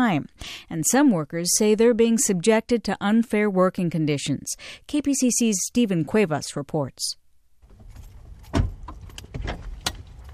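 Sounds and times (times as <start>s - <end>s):
speech: 0.0s - 7.2s
rustling shifting and soft clunks of two men settling into a car backseat: 7.6s - 10.3s
car door thudding shut: 7.7s - 10.1s.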